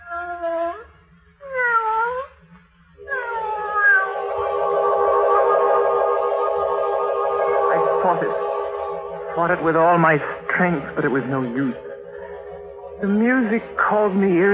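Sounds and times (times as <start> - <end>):
cat meowing: 1.4 - 2.3, 3.1 - 4.1
faint low rumble: 3.0 - 14.5
speech: 9.4 - 11.9, 13.0 - 14.5.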